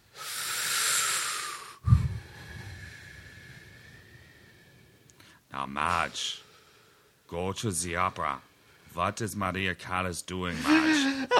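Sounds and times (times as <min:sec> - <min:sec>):
long deep inhale through the mouth: 0:00.1 - 0:05.4
low puff of breath and rough exhale: 0:00.2 - 0:05.4
speech: 0:05.6 - 0:06.4, 0:07.3 - 0:11.3.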